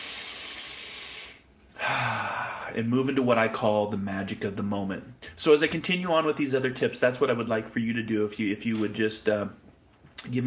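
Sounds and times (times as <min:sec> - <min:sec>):
deep breath in: 0:00.0 - 0:02.8
speech: 0:02.7 - 0:09.6, 0:10.2 - 0:10.4.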